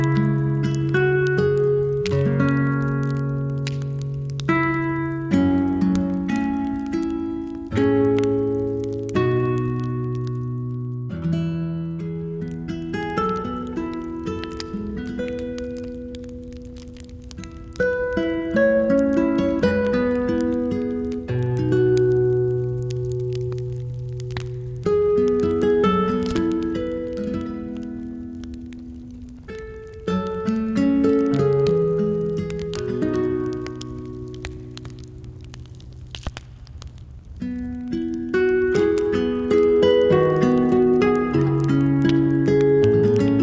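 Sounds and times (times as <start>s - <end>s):
calm slow music with low bass notes and gentle melody: 0.0s - 43.4s
faint crackling taps: 0.0s - 43.4s.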